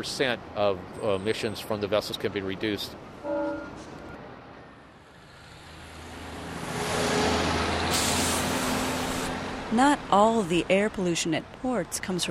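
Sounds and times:
speech: 0:00.0 - 0:03.2, 0:09.7 - 0:12.3
heavy duty diesel trucks rumbling at a port in California: 0:00.0 - 0:12.3
truck air brakes hissing: 0:07.8 - 0:09.3.

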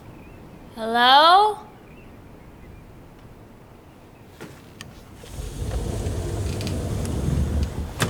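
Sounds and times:
speech: 0:00.8 - 0:01.7
low mechanical rumble: 0:05.0 - 0:08.0
back door creaking shut: 0:05.2 - 0:08.0.

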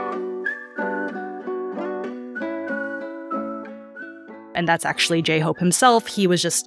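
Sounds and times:
whistled melody hook whistled by a rapper: 0:00.0 - 0:04.5
full loud music backing: 0:00.0 - 0:05.7
speech: 0:04.6 - 0:06.6.

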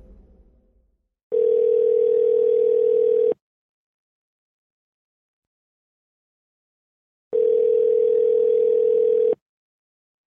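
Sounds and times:
outgoing phone call ringback tone: 0:01.4 - 0:03.4, 0:07.4 - 0:09.4.

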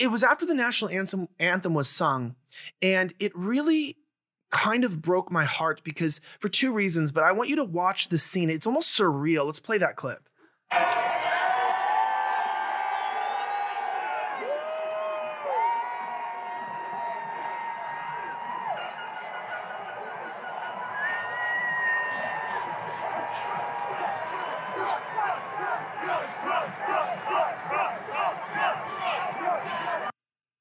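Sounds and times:
speech: 0:00.0 - 0:11.3
large crowd yelling and screaming: 0:10.7 - 0:30.1
scattered high shouts: 0:10.7 - 0:30.1
loud rhythmic crowd chant: 0:18.1 - 0:30.1.

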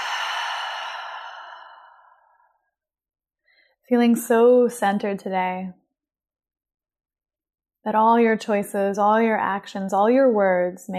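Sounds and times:
deep breath exhaled during a guided relaxation exercise: 0:00.0 - 0:02.5
speech: 0:03.9 - 0:05.8, 0:07.9 - 0:10.9.

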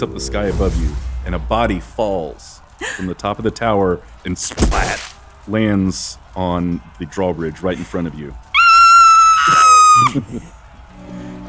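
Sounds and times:
speech: 0:00.0 - 0:08.4, 0:09.5 - 0:10.6
laughter: 0:02.6 - 0:03.6, 0:07.3 - 0:10.9
player's loud high-pitched in-character scream: 0:08.6 - 0:10.1.

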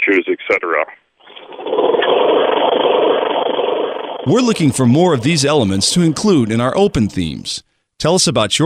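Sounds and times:
speech: 0:00.1 - 0:01.0, 0:04.2 - 0:08.6
lawnmower engine running: 0:01.3 - 0:07.4.

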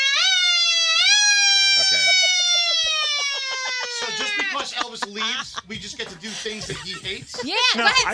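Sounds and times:
voice imitating an emergency siren: 0:00.0 - 0:05.3
laughter: 0:01.7 - 0:08.1
speech: 0:04.6 - 0:08.1.

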